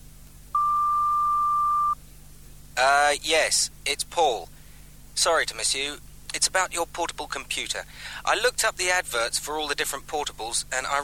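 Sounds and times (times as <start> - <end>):
quiet hum: 0.0 - 11.0
answering machine beep tone: 0.6 - 2.0
speech: 3.1 - 4.5, 5.2 - 11.0.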